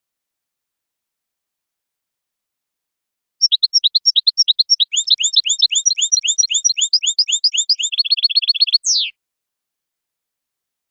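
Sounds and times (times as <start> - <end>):
European goldfinch song: 3.4 - 9.2.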